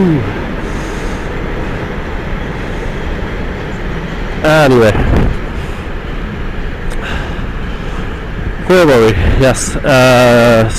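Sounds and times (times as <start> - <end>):
speech: 0.0 - 0.4, 4.4 - 5.4, 8.7 - 10.7
freight train passing: 0.0 - 10.7.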